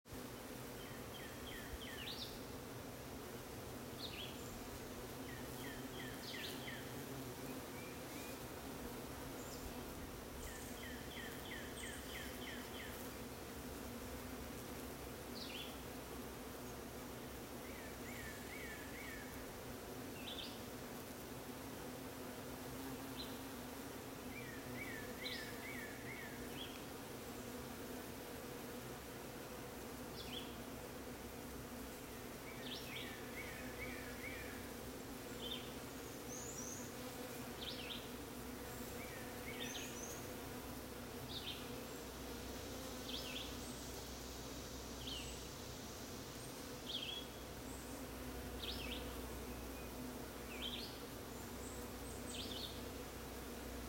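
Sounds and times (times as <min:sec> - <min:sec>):
bees buzzing in crepe myrtle: 0:00.1 - 0:53.8.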